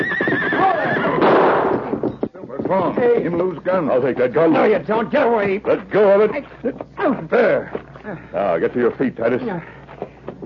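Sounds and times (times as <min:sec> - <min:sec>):
big stallion whinnying as it throws its rider: 0:00.0 - 0:01.3
speech: 0:02.7 - 0:09.8.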